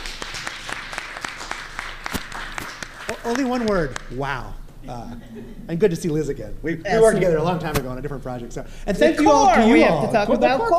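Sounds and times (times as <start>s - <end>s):
room full of people applauding: 0.0s - 4.2s
speech: 3.1s - 10.7s.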